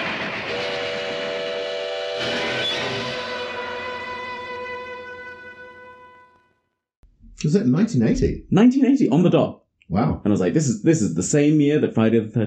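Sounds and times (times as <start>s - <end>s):
loud sustained train whistle blaring: 0.5s - 6.5s
speech: 7.4s - 12.4s.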